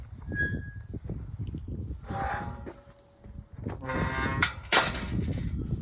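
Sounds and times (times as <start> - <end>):
small gate exit: 0.2 - 0.9, 2.0 - 5.7.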